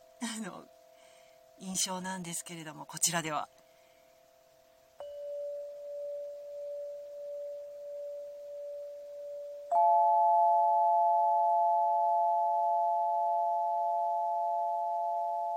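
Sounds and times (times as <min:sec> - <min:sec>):
speech: 0:00.2 - 0:00.8, 0:01.6 - 0:03.6
crystal instrument tones overlapping: 0:05.0 - 0:15.5.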